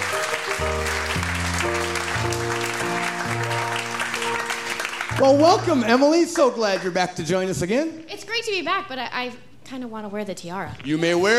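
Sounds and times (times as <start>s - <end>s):
sustained musical chords: 0.0s - 6.5s
audience applause: 0.0s - 7.3s
speech: 5.2s - 11.3s.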